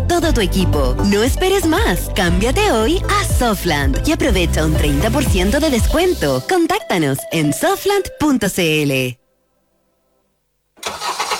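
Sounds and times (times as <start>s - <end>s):
speech: 0.1s - 9.2s
car engine starting: 10.8s - 11.3s.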